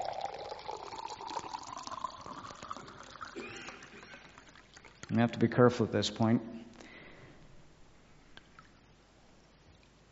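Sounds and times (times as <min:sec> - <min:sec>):
water pouring into a glass: 0:00.0 - 0:05.2
speech: 0:05.1 - 0:06.5.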